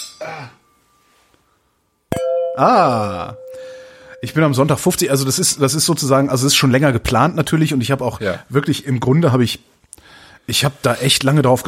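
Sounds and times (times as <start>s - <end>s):
speech: 0.2s - 0.6s, 2.6s - 3.5s, 4.2s - 11.6s
glasses clinking in a toast: 2.1s - 5.0s.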